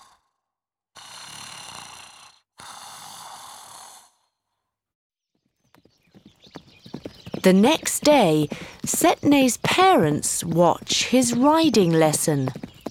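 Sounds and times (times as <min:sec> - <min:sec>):
long breathy snoring: 0:00.0 - 0:04.4
horse hooves clip-clopping: 0:05.4 - 0:12.8
speech: 0:07.4 - 0:12.6.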